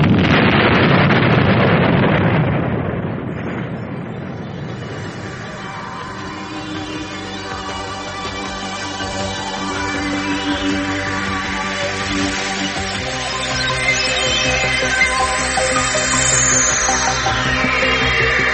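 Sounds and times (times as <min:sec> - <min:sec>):
roaring explosion of a planet: 0:00.0 - 0:07.2
lingering rumble: 0:00.0 - 0:18.5
steady sustained tones: 0:03.7 - 0:18.5.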